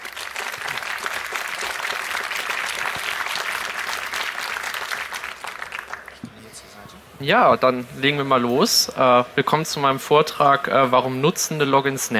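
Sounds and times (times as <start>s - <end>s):
audience applause: 0.0s - 6.3s
speech: 7.2s - 12.1s.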